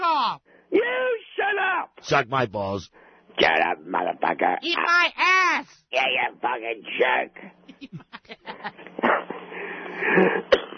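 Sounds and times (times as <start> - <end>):
speech: 0.2 - 1.0, 2.0 - 7.9, 8.6 - 9.2, 10.0 - 10.6
laughter: 7.7 - 9.4
person coughing: 10.0 - 10.7.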